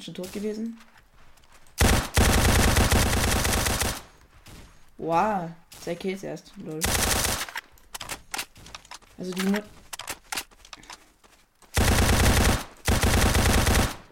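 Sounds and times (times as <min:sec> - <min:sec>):
speech: 0:00.0 - 0:01.0, 0:05.0 - 0:07.3, 0:09.2 - 0:09.8
rapid video game gunfire: 0:01.8 - 0:04.7, 0:06.8 - 0:08.2, 0:11.7 - 0:14.1.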